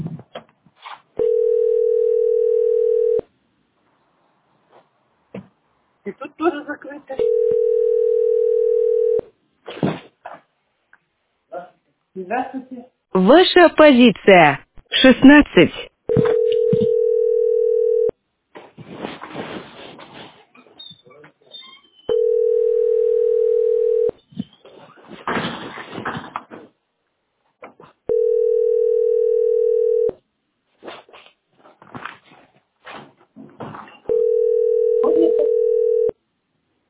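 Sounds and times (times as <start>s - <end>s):
telephone ringback tone over a phone line: 1.2s - 3.2s, 7.2s - 9.2s, 16.1s - 18.1s, 22.1s - 24.1s, 28.1s - 30.1s, 34.1s - 36.2s
speech: 6.1s - 7.5s, 12.3s - 15.9s.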